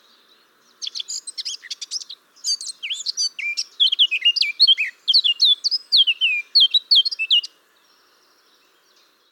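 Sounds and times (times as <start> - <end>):
Eurasian blackcap song: 0.0 - 9.3.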